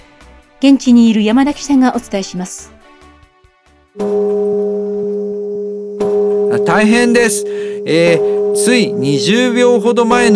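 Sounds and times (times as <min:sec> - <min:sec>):
speech: 0:00.6 - 0:02.8, 0:04.0 - 0:04.3, 0:06.8 - 0:10.3
deep Japanese temple bell tolling for New Year: 0:04.0 - 0:10.3.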